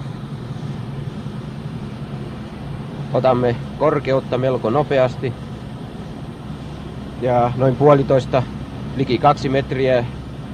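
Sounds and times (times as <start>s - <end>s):
propeller engine of old English two-seat Chipmunk tow plane towing a glider: 0.0s - 10.5s
speech: 3.1s - 5.5s, 7.2s - 10.2s.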